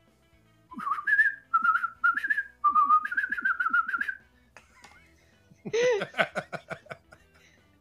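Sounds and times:
person whistling a signal call: 0:00.7 - 0:04.2
laughter: 0:04.6 - 0:07.4.

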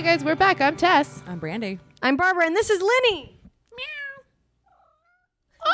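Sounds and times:
speech: 0:00.1 - 0:03.9
cat meowing: 0:03.7 - 0:05.7.

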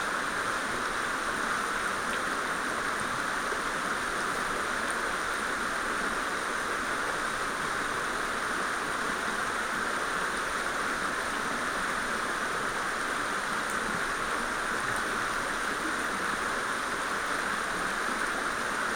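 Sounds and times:
mountain stream rushing: 0:00.0 - 0:18.9.

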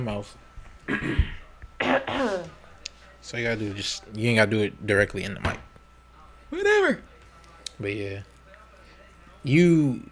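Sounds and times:
speech: 0:00.0 - 0:02.6, 0:03.2 - 0:05.7, 0:06.5 - 0:07.1, 0:07.8 - 0:08.3, 0:09.4 - 0:10.1
person clearing throat: 0:00.9 - 0:02.5.

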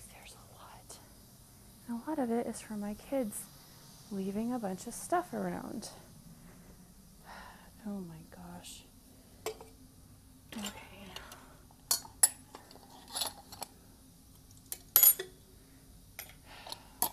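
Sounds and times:
faint low hum: 0:00.0 - 0:17.1
speech: 0:01.9 - 0:03.5, 0:04.1 - 0:06.0, 0:07.8 - 0:08.9, 0:10.6 - 0:10.8
metal silverware and dishes clinking while being gathered: 0:11.9 - 0:13.7, 0:14.6 - 0:15.4.

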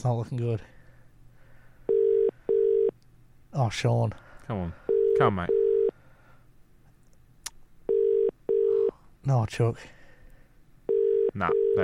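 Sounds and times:
speech: 0:00.0 - 0:00.8, 0:03.6 - 0:05.6, 0:09.2 - 0:10.0, 0:11.4 - 0:11.8
phone call ringing tone heard down the line: 0:01.9 - 0:03.0, 0:04.9 - 0:06.0, 0:07.9 - 0:09.0, 0:10.9 - 0:11.8.

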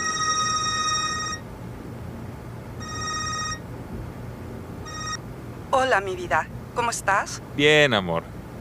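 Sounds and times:
telephone ringing with bright buzzy electronic ring after dialling: 0:00.0 - 0:01.5, 0:02.8 - 0:03.6, 0:04.8 - 0:05.2
low steady hum: 0:00.0 - 0:08.6
speech: 0:05.8 - 0:08.3.

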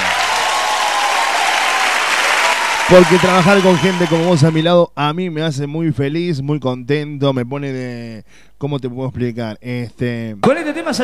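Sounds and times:
group applause: 0:00.0 - 0:04.6
speech: 0:02.9 - 0:11.0.

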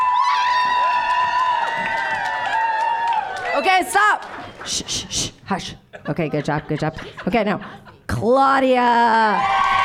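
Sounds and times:
live audience cheering and whooping: 0:00.0 - 0:03.9, 0:09.1 - 0:09.8
speech: 0:03.6 - 0:09.6.

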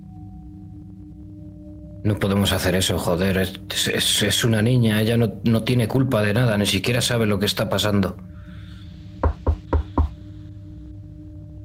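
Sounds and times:
speech: 0:02.0 - 0:08.3
firm hollow knocking on a door: 0:09.2 - 0:10.2.

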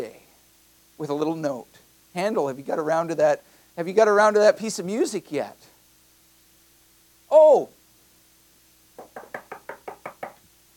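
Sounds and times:
speech: 0:01.0 - 0:05.7, 0:07.3 - 0:07.8
firm knocking on a wooden door: 0:09.0 - 0:10.4.

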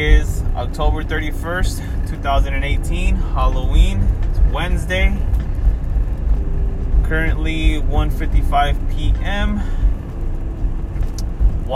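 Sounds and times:
speech: 0:00.0 - 0:05.4, 0:07.1 - 0:09.9
road traffic rumble heard from inside a car: 0:00.0 - 0:11.7.

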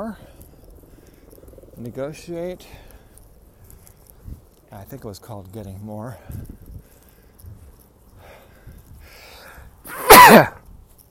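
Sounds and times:
speech: 0:00.0 - 0:00.3, 0:01.8 - 0:02.9, 0:04.7 - 0:06.5
person sneezing: 0:09.9 - 0:10.6.

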